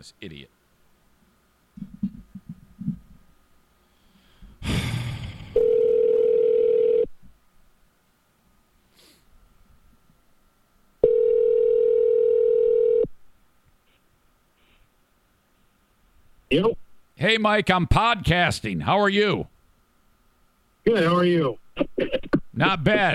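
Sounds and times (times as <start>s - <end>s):
speech: 0.0s - 0.6s, 16.5s - 19.5s, 20.9s - 23.1s
phone line ringback tones as a phone call is placed: 5.6s - 7.1s, 11.0s - 13.1s.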